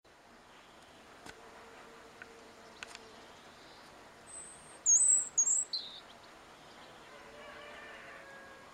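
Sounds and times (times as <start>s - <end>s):
faint background hiss: 0.1s - 8.7s
European robin giving high thin wavering whistles: 4.3s - 6.1s.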